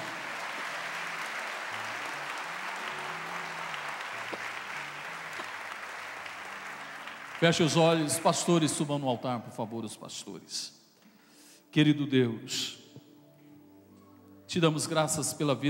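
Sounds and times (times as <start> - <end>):
congregation applauding: 0.0 - 8.8
speech: 7.4 - 10.8, 11.7 - 12.8, 14.5 - 15.6
faint low sustained musical tones: 7.4 - 15.6.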